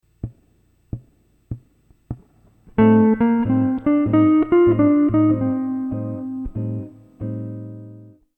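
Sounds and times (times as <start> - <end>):
Locrian modal melodic line: 2.8 - 7.4.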